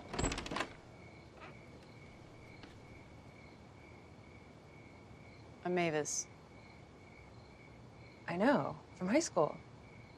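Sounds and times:
front door opening with a latch rattle: 0.0 - 3.1
speech: 5.6 - 6.4, 8.3 - 9.7.

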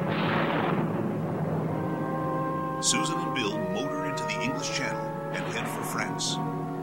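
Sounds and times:
explosions erupting on a ship: 0.0 - 1.9
speech: 2.8 - 6.7.

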